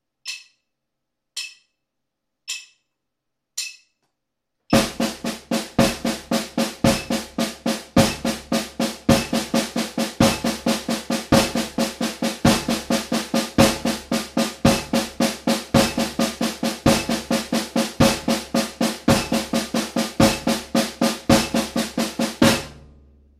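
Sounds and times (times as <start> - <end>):
binary quinary rhythm: 4.7 - 23.0.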